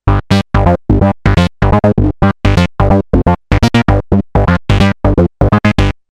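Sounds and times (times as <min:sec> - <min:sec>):
analog synthesizer: 0:00.1 - 0:06.0.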